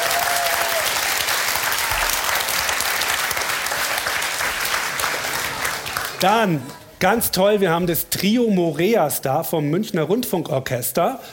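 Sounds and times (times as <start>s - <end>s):
audience applause: 0.0s - 6.3s
speech: 6.2s - 11.3s.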